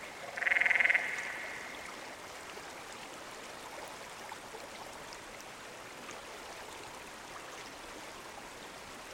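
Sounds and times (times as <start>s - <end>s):
canyon frog trill call: 0.4s - 1.5s.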